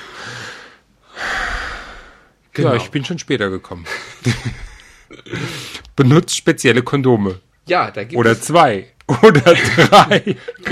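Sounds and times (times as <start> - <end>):
person taking a deep breath to relax: 0.0 - 2.4, 4.8 - 5.9
speech: 2.6 - 10.6
laughter: 3.8 - 5.6, 9.1 - 10.6.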